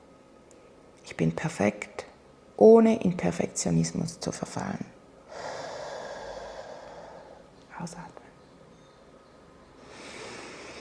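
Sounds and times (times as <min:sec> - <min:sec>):
speech: 0:01.1 - 0:02.0, 0:02.6 - 0:05.0, 0:07.8 - 0:08.2
slow breathing in and out during a guided breathing exercise: 0:05.3 - 0:07.6, 0:09.8 - 0:10.7.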